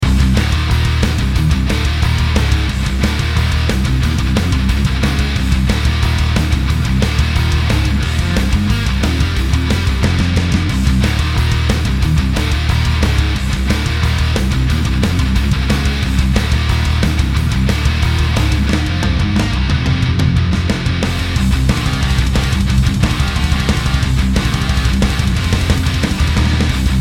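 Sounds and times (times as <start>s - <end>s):
mastered metal music: 0.0s - 26.9s.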